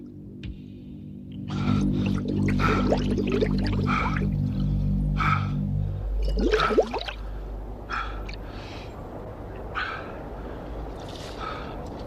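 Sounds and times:
low steady engine-like hum: 0.0 - 12.0
water bubbling and dripping: 1.4 - 4.7, 6.2 - 7.3.

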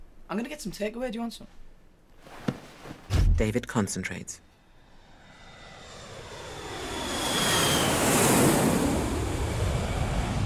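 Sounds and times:
speech: 0.3 - 1.6, 3.4 - 4.5
airplane engine roar aboard a plane: 4.6 - 10.4.

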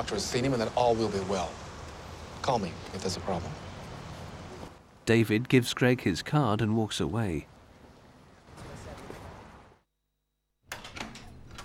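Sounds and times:
speech: 0.0 - 1.7, 2.4 - 3.7, 5.1 - 7.5
front door shutting with a sharp clunk: 10.7 - 11.6.

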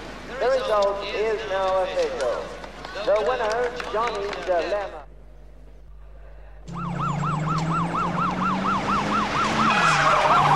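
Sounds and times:
speech: 0.4 - 5.0
rumble of a police vehicle engine speeding into a racecourse car park: 2.5 - 10.5
police siren wailing in fast yelping cycles: 6.6 - 10.5.

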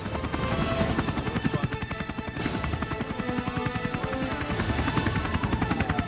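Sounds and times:
helicopter rotor chopping while hovering and landing in a car park: 0.0 - 6.0.

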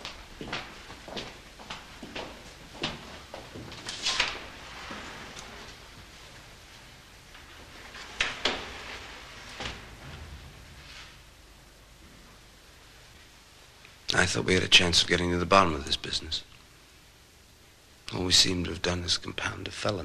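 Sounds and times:
wooden door with glass panes opening and closing: 3.9 - 4.6, 7.9 - 10.5
speech: 14.2 - 16.6, 18.2 - 20.0.

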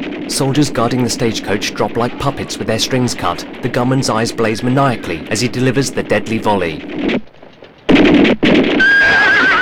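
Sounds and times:
speech: 0.3 - 7.3
frightened horses whinnying and neighing: 8.7 - 9.6.

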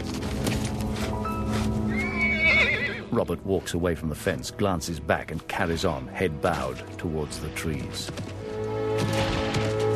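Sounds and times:
horse hoof clops around a corral: 0.0 - 4.3, 5.2 - 9.9
horse on a rope whinnying in a corral: 1.9 - 3.1
speech: 3.2 - 8.4.

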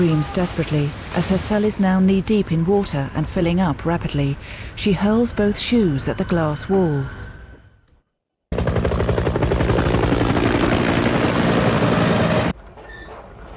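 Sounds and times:
speech: 0.0 - 7.2
helicopter flying overhead: 8.5 - 12.6.

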